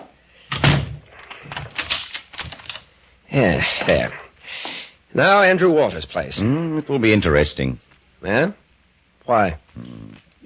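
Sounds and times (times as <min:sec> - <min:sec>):
door shutting with a heavy thud: 0:00.5 - 0:01.0
speech: 0:03.3 - 0:08.6, 0:09.3 - 0:10.4.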